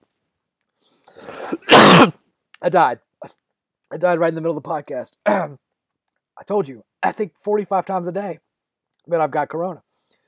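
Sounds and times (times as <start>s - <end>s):
strained voiced cough or gasp: 0.9s - 1.7s
hysterical harsh coughing fit: 1.2s - 2.2s, 5.2s - 5.6s
speech: 2.6s - 5.6s, 6.4s - 8.4s, 9.0s - 9.9s.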